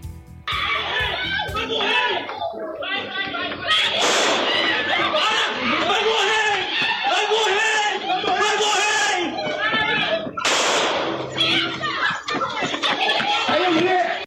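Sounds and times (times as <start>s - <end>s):
loud chaotic shouting and agitated voices: 0.5s - 14.2s
laughter: 0.6s - 14.2s
sharp gunshot-like bangs during police chase: 4.0s - 4.5s, 10.4s - 11.2s.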